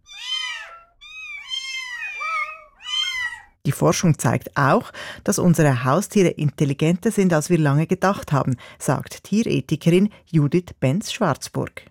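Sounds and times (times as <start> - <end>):
cat meowing: 0.0 - 3.6
speech: 3.6 - 11.8.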